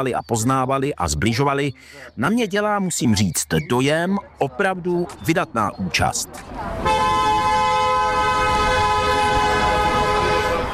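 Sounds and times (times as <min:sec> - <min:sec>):
speech: 0:00.0 - 0:07.3
passing car horn blaring in Pohořelice: 0:06.8 - 0:10.7.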